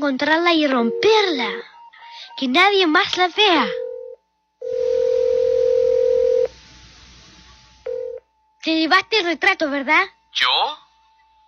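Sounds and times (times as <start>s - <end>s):
speech: 0.0s - 1.7s, 2.4s - 3.8s, 8.6s - 10.8s
telephone dial tone: 3.7s - 6.5s.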